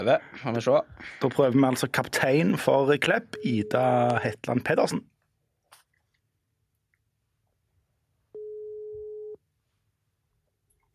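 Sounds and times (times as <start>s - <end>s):
speech: 0.0s - 5.1s
telephone ringing tone while placing a call: 3.4s - 3.8s, 8.4s - 9.4s.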